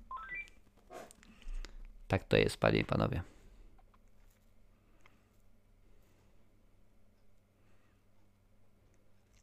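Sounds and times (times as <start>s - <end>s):
landline telephone with rising electronic tones: 0.1s - 0.5s
speech: 2.1s - 3.3s.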